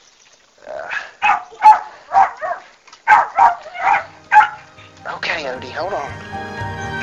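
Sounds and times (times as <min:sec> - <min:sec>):
pet dog barking and growling: 0:00.8 - 0:05.4
speech: 0:05.6 - 0:06.6.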